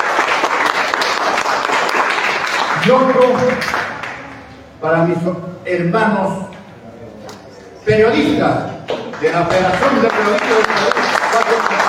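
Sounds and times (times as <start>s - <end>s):
audience applause for panelists at a public panel event: 0.0s - 4.4s, 8.9s - 11.8s
speech: 2.9s - 3.9s, 4.8s - 6.5s, 7.9s - 11.8s.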